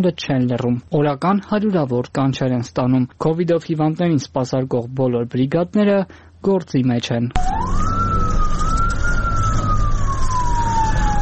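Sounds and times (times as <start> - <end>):
speech: 0.0 - 7.9
ambulance siren wailing: 7.4 - 11.2
low rumble of engine and traffic: 7.4 - 11.2.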